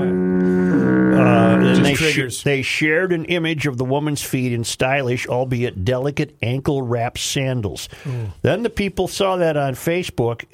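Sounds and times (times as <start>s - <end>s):
loud deep foghorn blast: 0.0s - 2.2s
speech: 1.9s - 10.5s.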